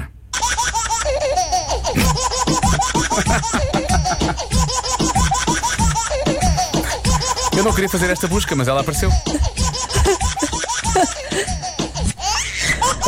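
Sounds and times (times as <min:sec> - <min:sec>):
baby giggles chopped and looped into a rhythmic remix: 0:00.4 - 0:13.0
speech: 0:07.6 - 0:09.7.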